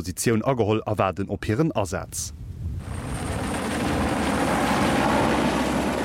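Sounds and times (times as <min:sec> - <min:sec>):
speech: 0:00.0 - 0:02.4
helicopter rumble overhead: 0:02.8 - 0:06.0.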